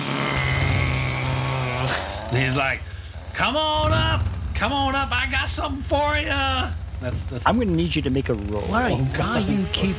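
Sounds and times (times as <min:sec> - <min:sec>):
chainsaw engine revving: 0:00.0 - 0:04.7, 0:06.3 - 0:09.9
speech: 0:02.3 - 0:09.9.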